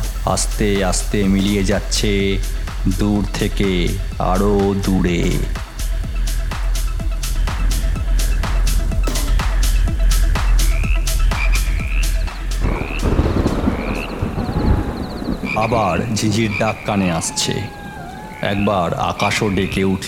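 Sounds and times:
speech: 0:00.3 - 0:05.6, 0:15.6 - 0:17.8, 0:18.4 - 0:20.0
frogs croaking outside in a chorus: 0:05.0 - 0:20.0.

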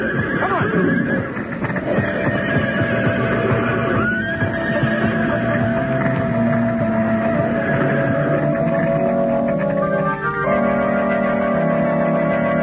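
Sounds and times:
panicked horses whinnying and neighing in a burning stable: 0:00.0 - 0:09.8
dense continuous roar of chaotic noise: 0:00.0 - 0:12.5.

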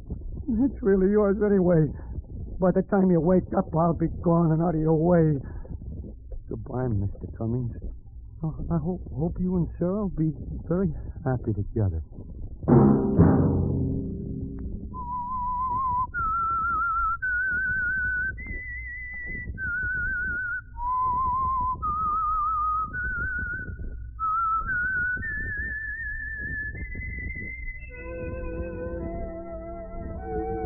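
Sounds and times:
speech: 0:00.5 - 0:02.0, 0:02.6 - 0:05.5, 0:06.5 - 0:13.4
brief low chord: 0:12.7 - 0:15.1
solo whistled theme melody: 0:14.6 - 0:30.6
soft orchestral backing: 0:27.9 - 0:30.6.

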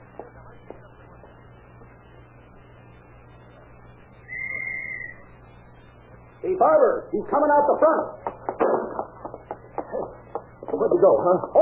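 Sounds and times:
low hum: 0:00.0 - 0:11.6
whistle blown as a signal during a chase: 0:04.2 - 0:05.3
speech: 0:06.4 - 0:08.2, 0:11.0 - 0:11.6.

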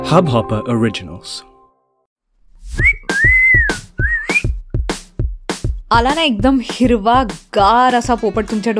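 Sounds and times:
speech: 0:00.1 - 0:01.5, 0:05.9 - 0:08.7
low rhythmic thumps: 0:02.5 - 0:08.6
person whistling a bright melodic phrase: 0:02.7 - 0:04.6.

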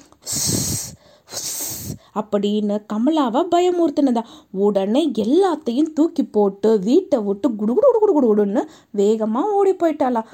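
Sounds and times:
voice imitating the hiss of a cobra: 0:00.2 - 0:02.0
speech: 0:02.1 - 0:10.3.

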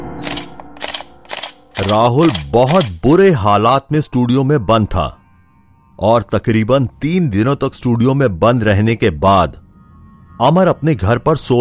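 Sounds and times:
low sustained musical drone: 0:00.0 - 0:11.5
camera shutter clicking: 0:00.2 - 0:03.0
speech: 0:01.8 - 0:05.2, 0:06.0 - 0:09.6, 0:10.4 - 0:11.5.

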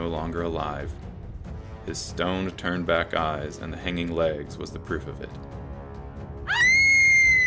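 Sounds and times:
speech: 0:00.1 - 0:01.1, 0:01.8 - 0:05.6
girl screaming in fear: 0:06.5 - 0:07.4.

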